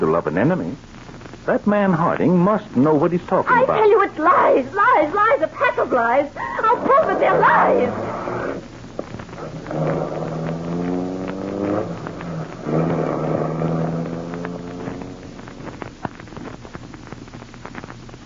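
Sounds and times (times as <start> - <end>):
speech: 0.0 - 8.1
car engine humming and revving: 7.0 - 16.0.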